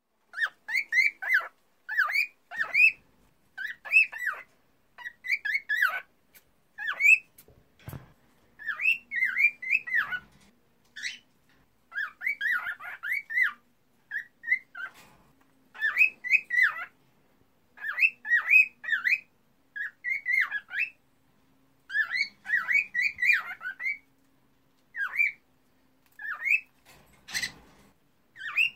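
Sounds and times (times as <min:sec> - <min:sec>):
female cockatiel singing: 0:00.3 - 0:03.0, 0:03.6 - 0:08.0, 0:08.6 - 0:11.3, 0:11.9 - 0:15.0, 0:15.7 - 0:17.0, 0:17.8 - 0:21.0, 0:21.9 - 0:24.1, 0:24.9 - 0:25.5, 0:26.1 - 0:28.7.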